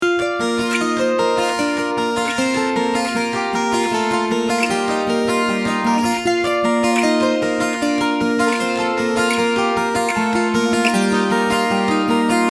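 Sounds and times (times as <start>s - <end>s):
guitar: 0.0s - 12.5s.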